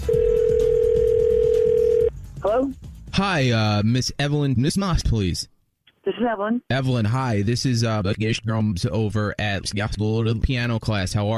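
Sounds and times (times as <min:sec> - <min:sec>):
telephone dial tone before a call: 0:00.0 - 0:02.1
speech: 0:02.5 - 0:05.6, 0:06.2 - 0:11.3.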